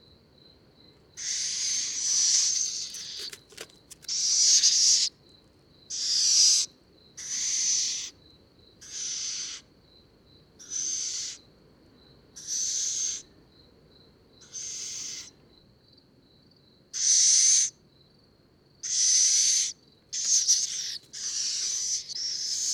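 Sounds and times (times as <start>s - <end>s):
little owl Athene noctua calling: 1.2s - 5.1s, 5.9s - 8.2s, 8.8s - 9.7s, 10.6s - 11.4s, 12.4s - 13.3s, 14.4s - 15.3s, 17.0s - 17.7s, 18.8s - 22.7s.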